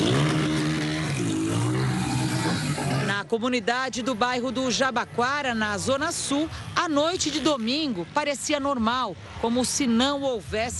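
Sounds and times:
motorcycle engine revving during stunts at a street party in Butantã: 0.0s - 3.2s
rough roar: 0.0s - 10.0s
speech: 3.3s - 10.7s.

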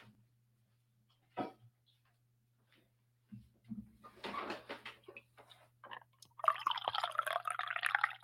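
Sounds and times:
coffee pouring into a cup: 5.9s - 8.2s.

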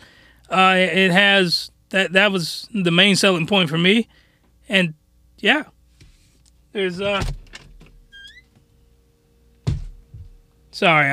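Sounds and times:
speech: 0.5s - 5.8s, 6.8s - 7.4s, 10.8s - 11.1s
door at home creaking open: 7.0s - 8.6s.

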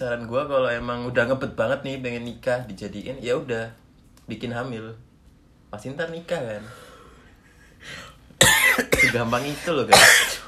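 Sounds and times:
speech: 0.0s - 5.1s, 5.7s - 6.8s, 7.8s - 10.3s
person coughing: 8.4s - 10.4s.

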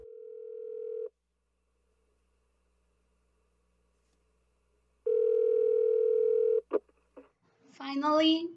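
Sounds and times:
telephone ringback tone: 0.0s - 1.1s, 5.1s - 6.6s
speech: 7.8s - 8.5s.

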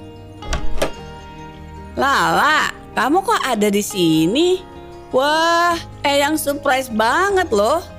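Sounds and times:
front door opening with a mechanical clunk: 0.4s - 1.1s
speech: 2.0s - 7.9s.

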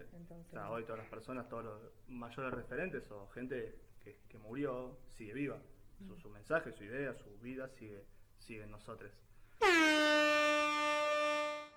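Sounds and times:
speech: 0.0s - 10.6s
loud air horn blast: 9.6s - 11.7s.

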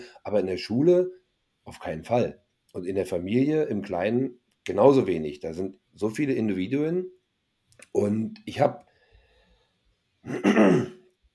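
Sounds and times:
speech: 0.0s - 7.2s, 7.8s - 8.9s, 10.2s - 10.9s
throat clearing: 10.2s - 11.0s.

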